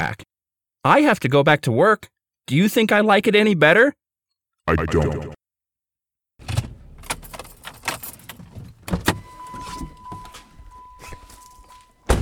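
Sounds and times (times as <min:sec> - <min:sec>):
speech: 0:00.0 - 0:04.0, 0:04.7 - 0:05.4
car door thumping: 0:06.4 - 0:12.1
keys jingling: 0:06.6 - 0:12.1
footsteps scuffing: 0:08.4 - 0:12.1
steady electronic car door chime: 0:08.9 - 0:12.1.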